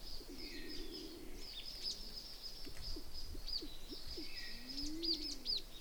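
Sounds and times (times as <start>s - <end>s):
speckled wood pigeon Columba hodgsonii calling: 0.2s - 5.7s.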